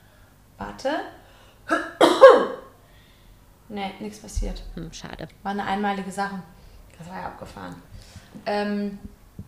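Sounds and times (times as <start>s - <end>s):
speech: 0.6s - 2.5s, 3.7s - 9.2s
person coughing with a raspy tail: 1.7s - 2.7s.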